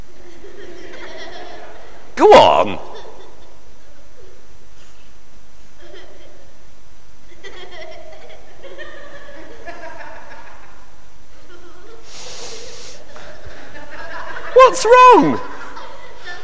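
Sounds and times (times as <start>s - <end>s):
laughter: 0.2s - 4.5s, 5.8s - 6.5s, 7.3s - 16.4s
speech: 2.2s - 2.9s, 14.8s - 15.5s
child sniffing something offered to smell: 12.0s - 13.1s.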